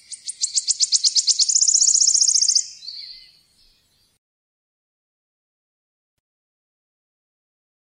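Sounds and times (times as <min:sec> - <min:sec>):
wood warbler song: 0:00.0 - 0:04.2.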